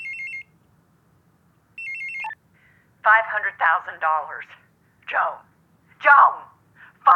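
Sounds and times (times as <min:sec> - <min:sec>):
telephone ringing with electronic trill: 0:00.0 - 0:00.5, 0:01.8 - 0:02.4
low hum: 0:00.0 - 0:07.1
speech: 0:03.3 - 0:06.5.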